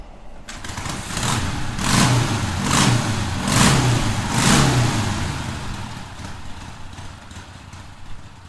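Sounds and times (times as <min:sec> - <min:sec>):
custom Harley-Davidson Magnum motorcycle engine with Sportster heads starting and revving: 0:00.3 - 0:08.4.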